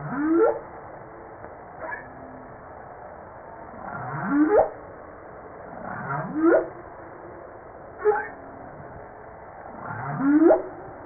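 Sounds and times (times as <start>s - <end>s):
humpback whale song: 0.0s - 0.7s, 3.8s - 4.8s, 5.7s - 6.8s, 8.0s - 8.8s, 9.7s - 11.0s.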